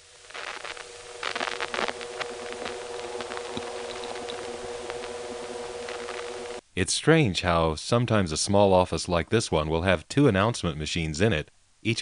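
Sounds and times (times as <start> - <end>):
electrical hum from a power supply in a small office: 0.0 - 12.0
faint hiss: 0.0 - 12.0
scratchy rustles: 0.3 - 5.2
speech: 6.8 - 12.0.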